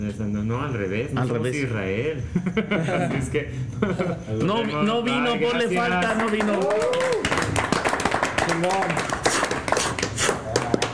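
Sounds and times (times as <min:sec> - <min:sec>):
speech: 0:00.0 - 0:07.4, 0:08.5 - 0:09.3
laughter: 0:02.3 - 0:04.6
firecrackers exploding at a fair: 0:07.1 - 0:10.9.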